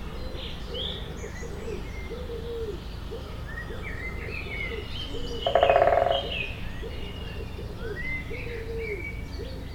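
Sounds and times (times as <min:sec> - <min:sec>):
low cooing: 0:00.2 - 0:09.6
high bird chirps: 0:05.4 - 0:06.3
woodpecker drumming: 0:05.4 - 0:06.6.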